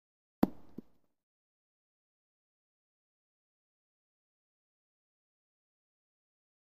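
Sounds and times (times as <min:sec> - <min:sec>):
golf ball bouncing: 0:00.4 - 0:01.0.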